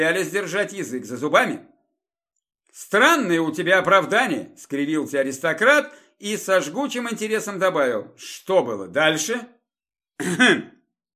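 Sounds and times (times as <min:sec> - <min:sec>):
speech: 0:00.0 - 0:01.7, 0:02.7 - 0:09.6, 0:10.2 - 0:10.7
cough into fist: 0:10.2 - 0:10.9
throat clearing: 0:10.2 - 0:10.9.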